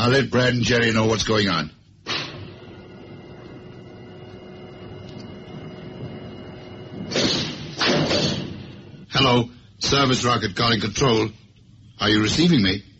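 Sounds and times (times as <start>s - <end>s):
speech: 0.0s - 1.8s, 9.2s - 11.4s, 12.0s - 12.9s
steady low electrical hum of a spacecraft airlock door: 0.0s - 12.9s
loud hissing thuds of a spacecraft airlock door: 4.8s - 9.0s.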